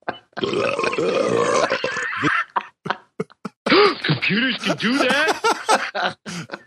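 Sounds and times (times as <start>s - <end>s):
recorded burps played back: 0.0s - 4.0s
speech: 0.4s - 1.4s, 4.3s - 6.5s
laughter: 0.4s - 4.0s, 4.6s - 6.6s.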